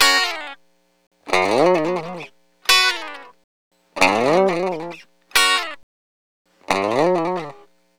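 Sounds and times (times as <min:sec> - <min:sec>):
dry lounge guitar in F sharp: 0:00.0 - 0:00.6, 0:01.3 - 0:03.4, 0:04.0 - 0:05.8, 0:06.6 - 0:07.8.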